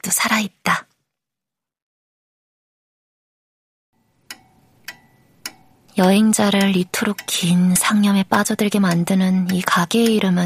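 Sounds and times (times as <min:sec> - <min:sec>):
speech: 0:00.1 - 0:00.8, 0:06.0 - 0:10.4
wall clock ticking in a cafe: 0:04.0 - 0:10.4.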